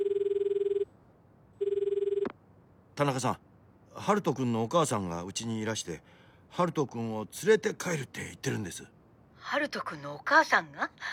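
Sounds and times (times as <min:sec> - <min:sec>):
smartphone ringing tone while placing a call: 0:00.0 - 0:00.9, 0:01.6 - 0:02.3
speech: 0:03.0 - 0:11.1.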